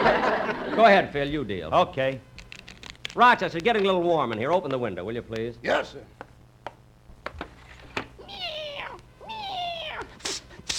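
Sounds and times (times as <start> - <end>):
laughter: 0.0 - 1.0
speech: 0.8 - 2.3, 3.1 - 6.2
cat meowing: 8.2 - 10.1.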